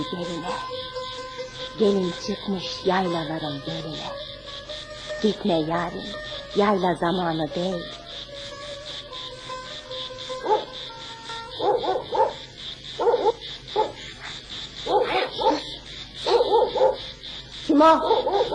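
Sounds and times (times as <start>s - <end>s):
speech: 0.0s - 1.0s, 1.6s - 4.3s, 5.2s - 8.0s, 17.8s - 18.5s
high-pitched insect-like drone: 0.0s - 18.5s
dog barking: 10.4s - 10.7s, 11.6s - 12.4s, 13.0s - 14.0s, 14.8s - 17.1s, 18.0s - 18.5s.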